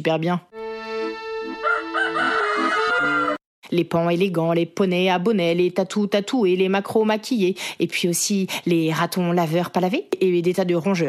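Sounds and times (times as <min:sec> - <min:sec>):
speech: 0:00.0 - 0:00.5, 0:02.1 - 0:11.0
rooster crowing: 0:01.5 - 0:03.4.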